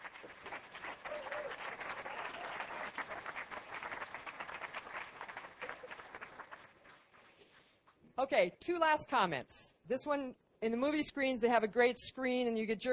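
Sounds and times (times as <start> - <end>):
crowd applauding for the standing facilitators and theme team: 0.0 - 7.7
speech: 8.2 - 12.9.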